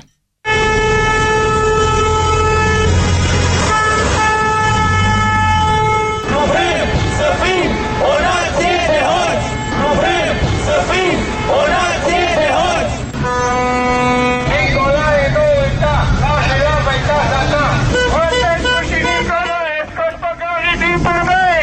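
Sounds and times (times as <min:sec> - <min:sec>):
car horns honking during a protest march of drivers around the Parliament building: 0:00.0 - 0:21.5
traffic noise: 0:00.0 - 0:21.6
protesters shouting: 0:06.2 - 0:13.0.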